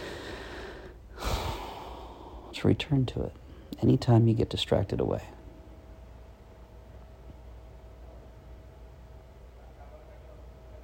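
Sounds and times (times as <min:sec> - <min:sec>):
long deep breath: 0:00.0 - 0:02.6
speech: 0:02.6 - 0:05.4.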